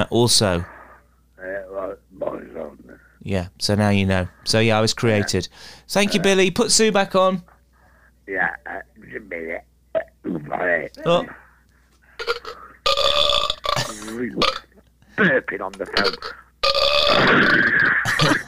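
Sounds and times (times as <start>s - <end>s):
speech: 0.0s - 0.7s, 3.2s - 7.5s, 8.3s - 11.4s, 14.0s - 14.6s, 15.2s - 18.4s
burping machine burps over the phone: 10.0s - 11.4s, 12.2s - 14.8s, 15.9s - 18.4s.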